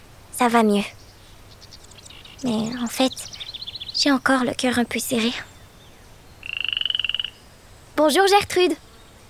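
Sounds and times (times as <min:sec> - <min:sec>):
speech: 0:00.4 - 0:01.0, 0:02.4 - 0:03.3, 0:04.0 - 0:05.5, 0:08.0 - 0:08.8
small frog croaking: 0:01.5 - 0:04.4, 0:05.2 - 0:07.5.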